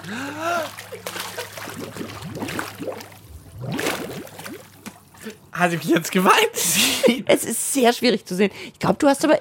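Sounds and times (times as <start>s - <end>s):
speech: 0.0s - 1.2s, 5.6s - 9.3s
splash of a person's head plunging under water: 0.0s - 5.4s.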